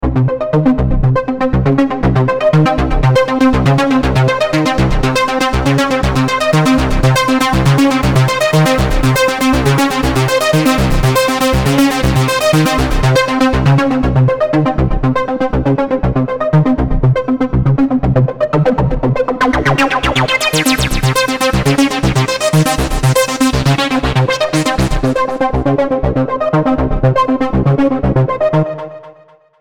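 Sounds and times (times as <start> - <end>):
trance music pattern: 0.0 - 29.0.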